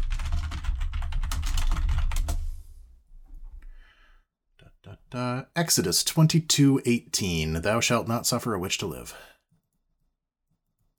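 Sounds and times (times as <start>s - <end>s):
typing on a computer keyboard: 0.0s - 2.5s
soft breath: 3.6s - 4.3s
speech: 5.1s - 9.4s.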